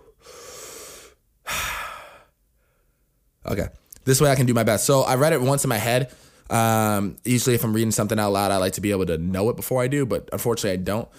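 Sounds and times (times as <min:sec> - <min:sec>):
heavy breathing from someone catching their breath after talking fast: 0:00.0 - 0:03.2, 0:06.1 - 0:06.5
speech: 0:03.5 - 0:11.1.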